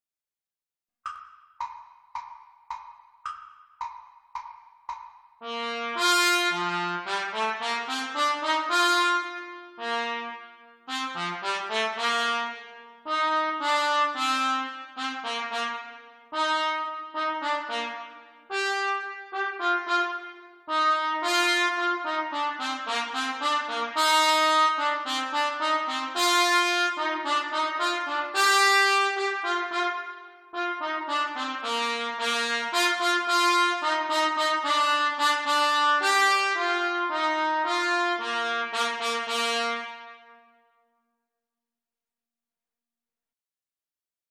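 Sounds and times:
trumpet duets at exam speed: 0:05.4 - 0:40.6.

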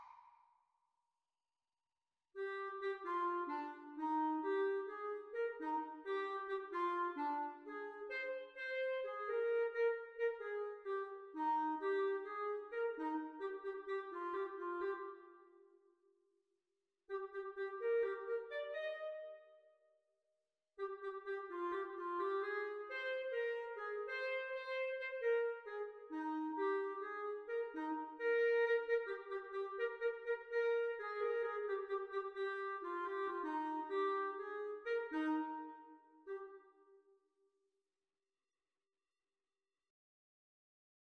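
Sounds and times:
clarinet duet at exam speed: 0:02.4 - 0:15.7, 0:17.1 - 0:19.7, 0:20.8 - 0:37.0.

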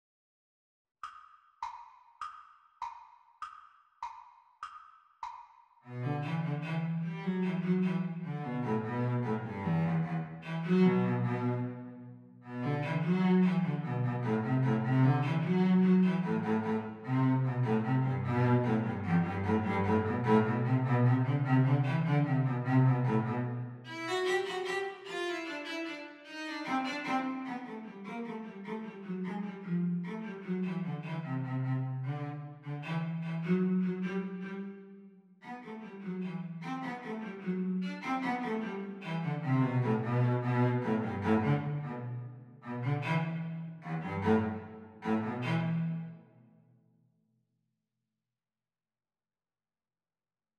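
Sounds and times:
cello playing a reel, teacher part of a duet: 0:05.9 - 0:34.6, 0:35.5 - 0:46.1.

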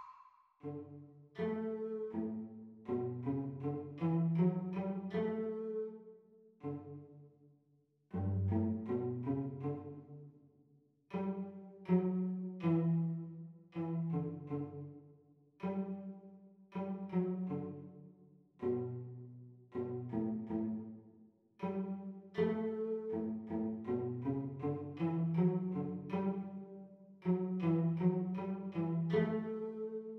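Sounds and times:
cello duet playalong: 0:00.6 - 0:07.2, 0:08.1 - 0:10.2, 0:11.1 - 0:15.0, 0:15.6 - 0:21.0, 0:21.6 - 0:30.1.

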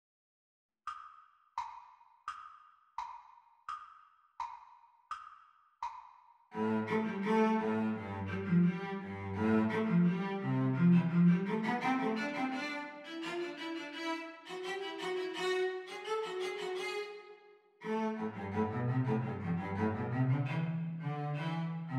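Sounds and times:
cello playing teacher part of a duet: 0:06.6 - 0:21.9.

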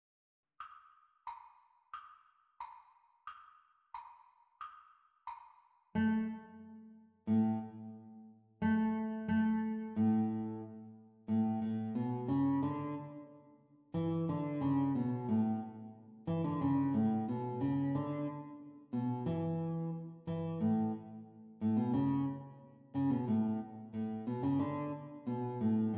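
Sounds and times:
guitar duet at exam speed: 0:06.0 - 0:08.0, 0:08.6 - 0:25.9.

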